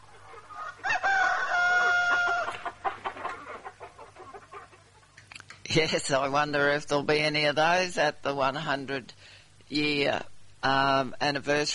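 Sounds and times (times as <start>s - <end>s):
chicken clucking: 0.0s - 5.4s
farmyard rustling: 0.0s - 8.9s
low steady hum: 0.0s - 11.7s
rooster crowing: 0.5s - 2.6s
speech: 5.7s - 11.7s.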